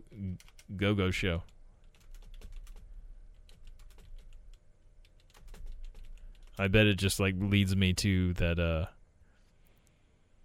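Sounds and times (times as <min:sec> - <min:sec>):
rapid typing on a computer keyboard entering a web search: 0:00.4 - 0:00.7, 0:01.8 - 0:06.7
speech: 0:00.8 - 0:01.5, 0:06.6 - 0:09.0.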